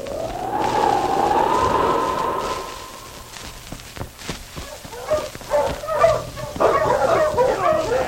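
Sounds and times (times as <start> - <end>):
sustained howl-like tone: 0.0 - 3.8
sled team of huskies yipping, barking and whining: 4.9 - 8.0.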